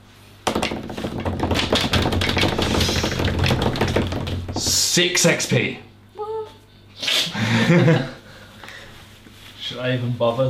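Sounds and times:
drum roll tapped out by hand on a table: 0.5 - 4.9
speech: 5.0 - 5.9, 7.5 - 8.2, 9.8 - 10.4.

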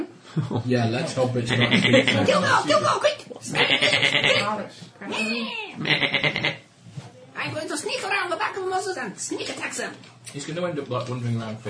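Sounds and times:
speech: 0.4 - 6.6, 7.4 - 11.6
human voice imitating a sheep bleating: 3.5 - 4.5, 5.8 - 6.6.

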